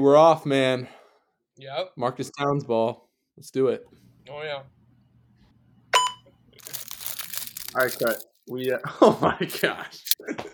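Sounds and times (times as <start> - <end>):
speech: 0.0 - 1.0, 1.6 - 4.8, 7.7 - 10.5
fortune cookie wrapper crinkling: 6.6 - 8.8, 9.5 - 10.2
wrapped fortune cookie cracking: 6.6 - 8.8.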